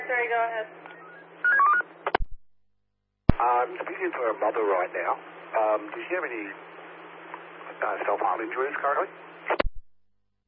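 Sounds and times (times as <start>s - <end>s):
speech: 0.2s - 1.6s, 3.7s - 6.7s, 7.8s - 9.6s
telephone keypad dialing tones: 0.9s - 1.8s.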